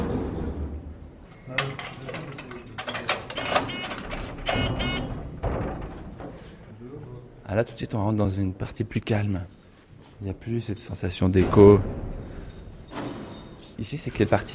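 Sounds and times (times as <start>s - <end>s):
heavy prison security doors and airlocks clanking and grinding: 1.6s - 6.5s, 11.2s - 14.5s
speech: 7.5s - 9.6s, 10.2s - 12.1s, 13.8s - 14.5s.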